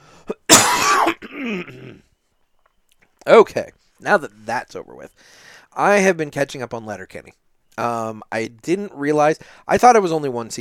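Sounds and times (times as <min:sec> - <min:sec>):
person coughing: 0:00.3 - 0:02.1
rough drawn-out throat clearing: 0:00.3 - 0:02.1
speech: 0:01.4 - 0:02.1, 0:03.3 - 0:10.5.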